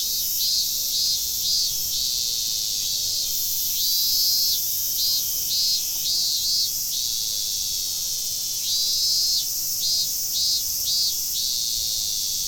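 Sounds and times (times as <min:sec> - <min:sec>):
chorus of several cicadas buzzing and throbbing: 0:00.0 - 0:07.7, 0:08.6 - 0:12.4.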